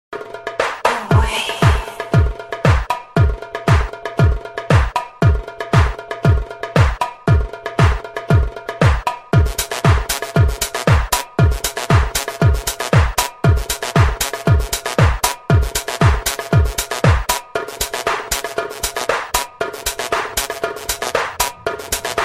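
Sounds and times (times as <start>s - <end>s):
dance drumbeat tone: 0.2s - 22.2s.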